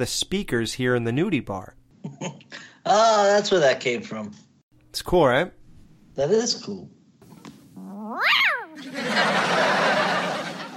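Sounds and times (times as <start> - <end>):
speech: 0.0 - 4.4, 5.0 - 5.6, 6.2 - 7.0
cat yowling after being hit by a thrown disc: 7.8 - 8.8
laughter: 8.7 - 10.7.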